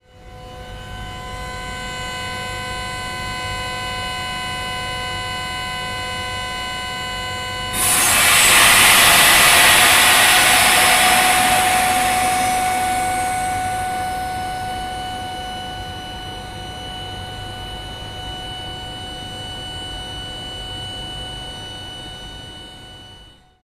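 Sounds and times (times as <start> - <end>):
compressor: 7.8 - 16.5.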